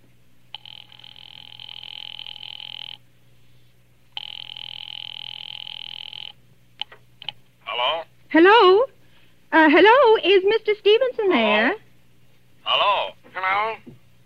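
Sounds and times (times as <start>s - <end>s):
telephone ringing over the line: 0.5s - 3.0s, 4.2s - 6.9s
speech: 8.4s - 8.9s, 9.6s - 11.8s.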